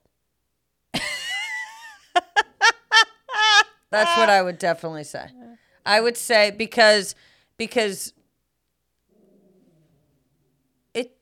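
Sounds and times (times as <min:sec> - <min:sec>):
laughter: 0:01.0 - 0:04.6
speech: 0:03.9 - 0:08.2, 0:11.0 - 0:11.1
male dog growling low: 0:09.1 - 0:10.9.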